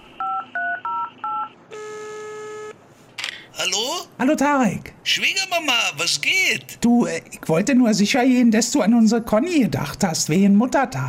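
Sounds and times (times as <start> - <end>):
long steady telephone tone: 0.0 - 2.8
speech: 3.6 - 11.0.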